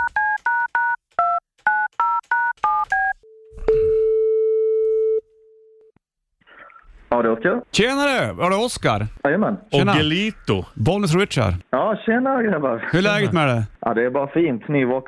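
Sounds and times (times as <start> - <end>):
dual-pitch phone keypad tones for an outgoing call: 0.0 - 5.9
speech: 7.2 - 15.0.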